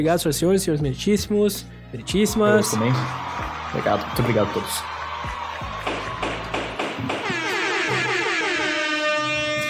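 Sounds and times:
speech: 0.0 - 5.4
crowd noise: 2.0 - 8.0
people clapping: 2.3 - 8.1
sharp thumps: 5.8 - 8.6
loud brassy vuvuzela horn blaring: 6.0 - 9.6.

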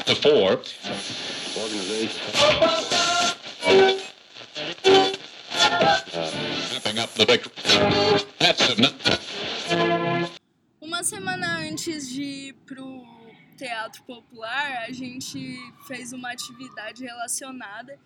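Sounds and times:
loud crackling radio static: 0.0 - 18.0
speech: 0.1 - 3.0, 6.9 - 10.4, 11.0 - 18.0
garbled voice-like fragments through radio static: 10.8 - 18.0.

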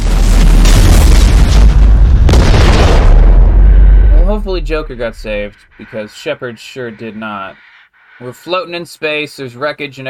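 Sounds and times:
spaceship exploding in a video game: 0.0 - 5.3
speech: 4.4 - 10.0.

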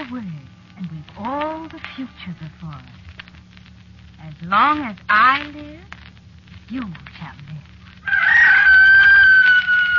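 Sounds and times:
faint low hum: 0.0 - 9.9
speech: 1.2 - 3.1, 4.2 - 6.0, 6.7 - 7.8
rooster crowing at dawn below a hill: 8.0 - 9.9.

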